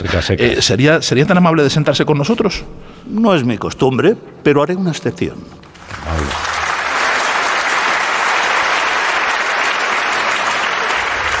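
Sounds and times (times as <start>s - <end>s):
speech: 0.0s - 6.2s
large audience applauding: 5.7s - 11.3s.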